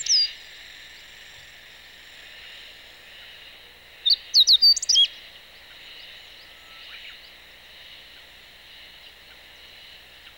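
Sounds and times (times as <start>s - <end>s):
meadow bunting singing: 0.0s - 0.4s, 4.0s - 5.1s.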